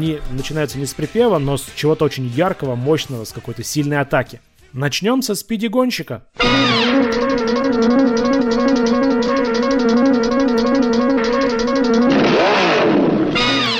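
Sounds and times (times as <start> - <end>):
speech: 0.0 - 8.1
blaring brass chord in a theme song intro: 6.4 - 13.7
swooping engine-like sound effect: 6.4 - 13.7.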